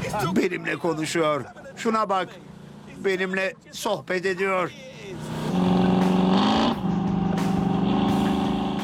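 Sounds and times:
speech: 0.1 - 5.8
car exhaust revving: 5.1 - 8.8.

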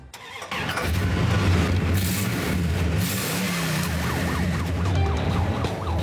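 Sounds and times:
1963 New York police car 413 V8 engine starting and idling: 0.0 - 6.0
1963 New York police car siren wailing: 3.6 - 6.0.

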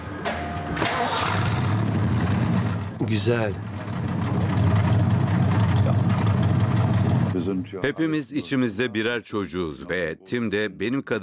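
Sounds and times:
pickup truck engine started with push-button under the steering wheel, idling: 0.0 - 7.6
speech: 3.0 - 3.8, 7.4 - 11.2.

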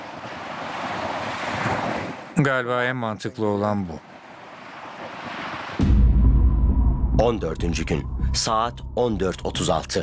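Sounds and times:
rolling ocean waves: 0.0 - 8.6
wind: 0.0 - 10.0
speech: 2.4 - 4.1, 7.2 - 10.0.

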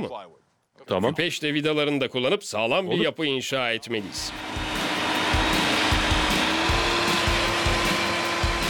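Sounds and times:
speech: 0.0 - 4.7
power drill boring holes in plywood: 4.1 - 8.6.

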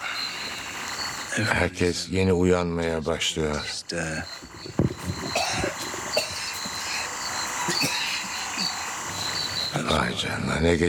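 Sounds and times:
insects chirping: 0.0 - 10.3
speech: 1.4 - 4.9, 10.2 - 10.8
people coughing after waking up: 5.2 - 8.9
throat-clearing: 5.3 - 8.8.

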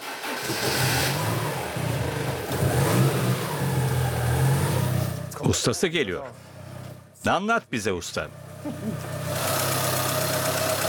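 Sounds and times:
factory-original well maintained car engine with 114,000 kilometres starting and revving: 0.0 - 5.4, 8.3 - 10.8
speech: 0.5 - 1.1, 5.5 - 6.5, 7.2 - 9.1.

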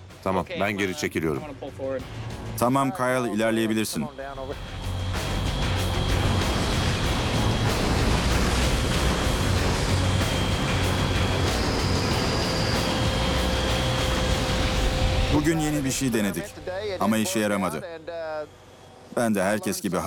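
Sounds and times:
speech: 0.2 - 4.8, 15.4 - 20.0
faint high whines: 3.0 - 20.0
grinding scraping of snow being pushed off railway tracks: 4.3 - 18.0
heavy machine pushing snow off railway tracks: 4.6 - 17.4.

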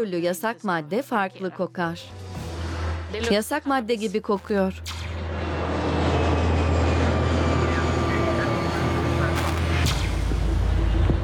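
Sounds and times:
speech: 0.0 - 2.3, 3.1 - 4.9
low droning hum: 4.7 - 11.2
airplane jet engine roar while landing: 4.9 - 11.2.

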